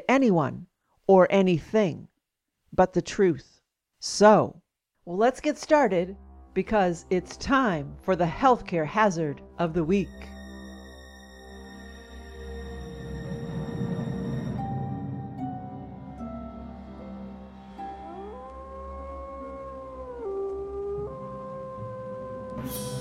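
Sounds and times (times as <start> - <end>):
speech: 0.1 - 2.1, 2.7 - 10.4
low steady droning background: 10.2 - 22.9
lone wolf howling: 16.2 - 22.9.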